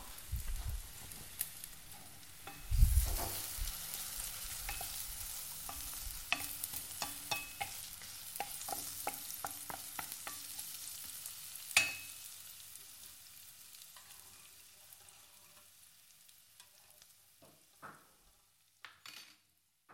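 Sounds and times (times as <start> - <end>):
vegetables and thinly sliced carrots sizzling in a pan: 0.0 - 18.9
utensil scraping and stirring vegetables in a pan: 1.2 - 10.6, 14.0 - 15.7.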